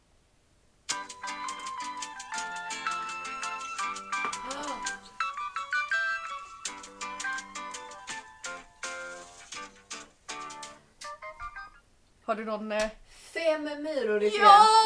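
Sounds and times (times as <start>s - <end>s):
children's TV theme tune through a small phone speaker: 0.9s - 9.7s, 10.4s - 11.8s
speech: 12.3s - 14.8s.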